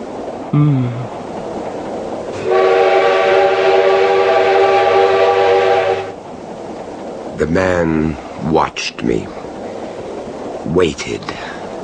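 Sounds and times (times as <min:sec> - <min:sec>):
train rumbling into a tunnel: 0:00.0 - 0:11.8
speech: 0:00.5 - 0:01.0, 0:07.4 - 0:09.5, 0:10.7 - 0:11.4
train horn blast: 0:02.4 - 0:06.2.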